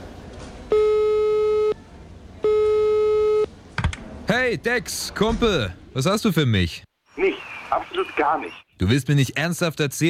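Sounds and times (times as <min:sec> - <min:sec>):
telephone ringing tone while phoning someone: 0:00.7 - 0:01.8, 0:02.5 - 0:03.5
speech: 0:04.5 - 0:06.9, 0:08.2 - 0:10.0.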